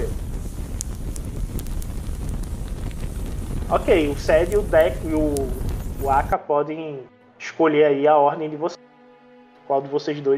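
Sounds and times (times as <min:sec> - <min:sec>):
steady roaring fire with a low rumble: 0:00.0 - 0:06.4
speech: 0:03.7 - 0:08.8, 0:09.7 - 0:10.3.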